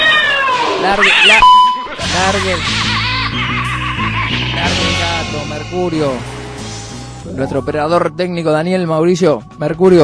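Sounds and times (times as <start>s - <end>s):
cat meowing: 0.0s - 2.0s
speech: 0.8s - 3.4s, 4.6s - 6.4s, 7.3s - 10.0s
music: 1.7s - 10.0s
laughter: 1.8s - 5.9s.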